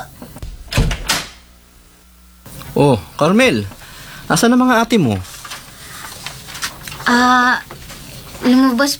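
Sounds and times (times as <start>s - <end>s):
door latch click: 0.4s - 1.5s
speech: 2.8s - 5.3s, 7.1s - 7.7s, 8.4s - 8.9s.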